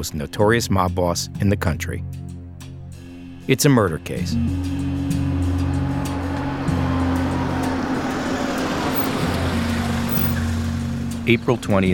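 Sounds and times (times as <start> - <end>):
speech: 0.0 - 2.2, 3.5 - 5.3, 11.2 - 11.9
car engine rumbling as the car pulls up: 4.2 - 11.4.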